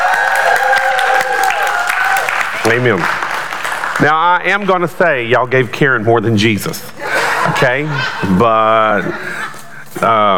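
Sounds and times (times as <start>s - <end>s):
audience clapping: 0.0s - 4.8s
speech: 2.7s - 3.2s, 4.0s - 9.4s, 10.0s - 10.3s
laughter: 7.0s - 9.9s.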